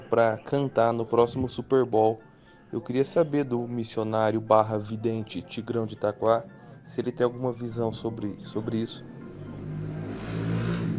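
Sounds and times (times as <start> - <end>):
speech: 0.1 - 9.1
motorcycle passing by outside: 9.0 - 10.9.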